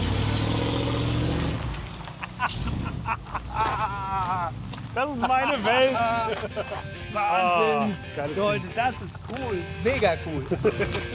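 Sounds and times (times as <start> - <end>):
heavy vehicle carrying a two-tonne cabin pulling away: 0.0 - 7.1
laughter: 2.1 - 8.0, 10.3 - 11.1
speech: 2.4 - 11.1.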